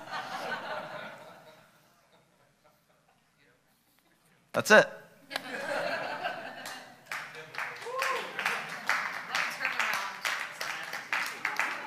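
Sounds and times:
laughter: 0.0 - 3.3, 5.3 - 10.0, 10.8 - 11.8
speech: 4.6 - 5.0
scattered clapping from a small crowd: 6.6 - 11.8.

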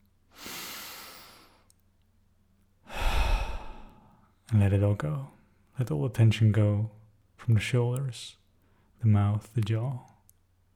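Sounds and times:
deep breaths: 0.3 - 1.7, 2.8 - 4.3
speech: 4.5 - 8.4, 9.0 - 10.1.

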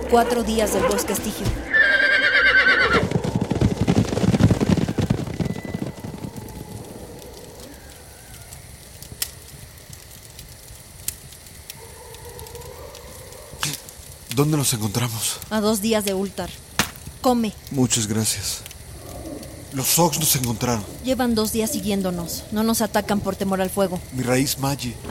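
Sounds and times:
rough rain-like noise: 0.0 - 25.0
speech: 0.1 - 1.8, 14.4 - 16.6, 17.2 - 18.7, 19.7 - 25.0
horse whinnying loudly: 1.6 - 3.4.

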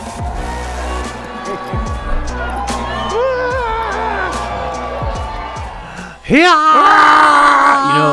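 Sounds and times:
crowd roaring: 0.0 - 8.1
amplified shouting voices: 0.3 - 8.1
man shrieking on stage: 3.0 - 4.8, 5.8 - 8.1.

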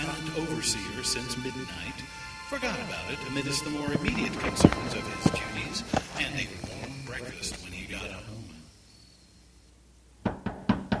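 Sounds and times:
voices: 0.0 - 8.8
speech: 0.4 - 8.4
heavy distant pounding on a building's doors at night before dawn: 10.2 - 10.9.

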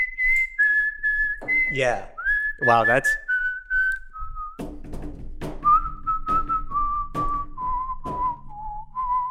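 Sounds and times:
person whistling a tune: 0.0 - 4.6, 5.6 - 9.2
speech: 1.7 - 3.2
steady rhythmic thumping beat: 4.6 - 8.9.

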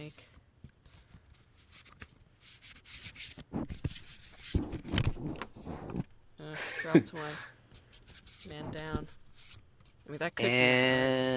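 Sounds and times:
deck of cards being shuffled near the mic for ASMR: 0.2 - 6.1, 7.2 - 11.3
speech: 6.9 - 7.5, 8.4 - 9.2, 10.1 - 11.3.

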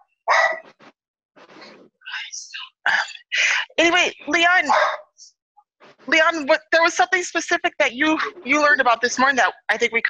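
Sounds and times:
dogs barking: 0.3 - 0.7, 4.7 - 5.1
speech: 3.8 - 5.0, 6.1 - 10.0.

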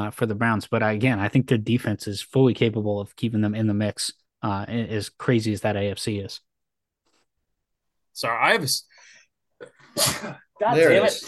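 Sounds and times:
speech: 0.0 - 6.5, 8.2 - 9.0, 9.6 - 11.2
person sneezing on a call: 9.6 - 10.5.

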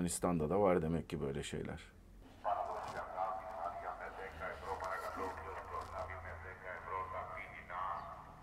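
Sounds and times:
speech: 0.0 - 2.0
low rumble of traffic: 0.0 - 8.4
street vendor selling potatoes and onions calling through a loudspeaker: 2.4 - 8.4.

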